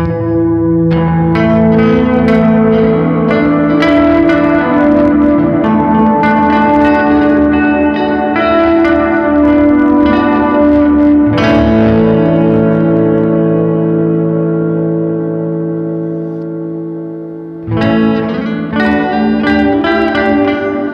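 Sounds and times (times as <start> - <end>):
guitar chords played through an ambient reverb pedal: 0.0 - 20.9.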